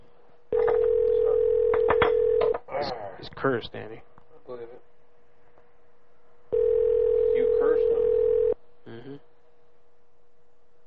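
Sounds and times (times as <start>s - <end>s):
telephone dial tone: 0.6s - 2.5s, 6.6s - 8.6s
speech: 2.8s - 4.8s.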